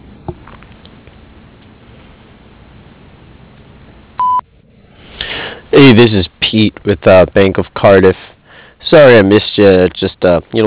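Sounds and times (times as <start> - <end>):
loud steady electronic voicemail beep: 4.2 - 4.4
speech: 5.8 - 8.3, 8.9 - 10.6.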